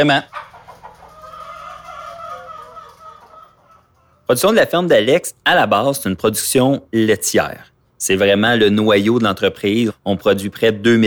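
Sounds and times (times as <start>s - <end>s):
speech: 0.0s - 0.4s, 4.3s - 11.0s
hens clucking in a henhouse: 0.0s - 4.4s.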